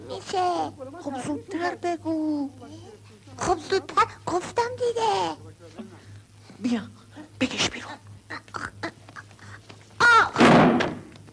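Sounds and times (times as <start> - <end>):
speech: 0.2 - 5.9, 6.6 - 8.0
chair being knocked over: 10.4 - 11.1.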